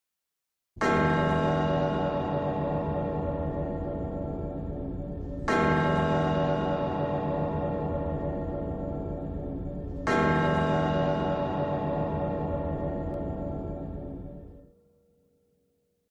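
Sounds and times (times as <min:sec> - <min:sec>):
gold bell: 0:00.8 - 0:16.0.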